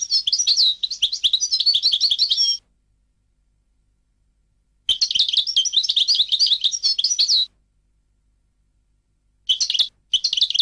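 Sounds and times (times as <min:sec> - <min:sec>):
European goldfinch song of fast bright twittering and trilled notes: 0:00.0 - 0:02.6, 0:04.9 - 0:07.5, 0:09.5 - 0:10.6.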